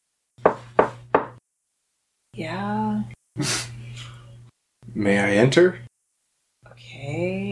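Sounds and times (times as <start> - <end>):
firm knocks on a wooden cabin door: 0.4 - 1.4
speech: 2.4 - 3.7, 5.0 - 5.9.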